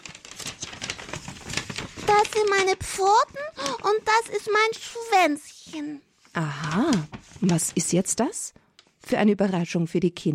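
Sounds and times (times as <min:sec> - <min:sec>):
paper crinkling and rustling as it is opened: 0:00.0 - 0:08.2
speech: 0:02.1 - 0:10.3.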